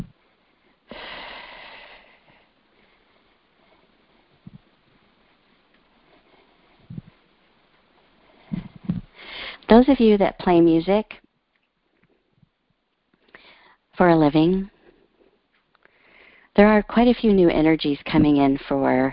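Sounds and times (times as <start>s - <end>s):
deep breath in: 0.9s - 3.0s, 9.2s - 9.6s, 13.3s - 13.8s, 15.9s - 16.5s
speech: 9.7s - 11.2s, 14.3s - 14.7s, 16.6s - 19.1s.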